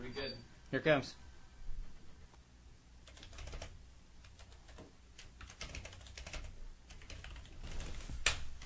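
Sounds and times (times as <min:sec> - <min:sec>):
speech: 0:00.2 - 0:01.2
typing on a computer keyboard: 0:03.0 - 0:08.6.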